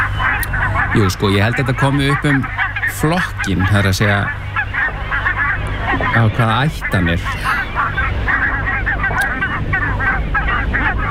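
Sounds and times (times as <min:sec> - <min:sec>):
constant low drone: 0:00.0 - 0:11.1
goose-like bird honking calls: 0:00.0 - 0:11.1
speech: 0:01.0 - 0:04.5, 0:05.9 - 0:07.6.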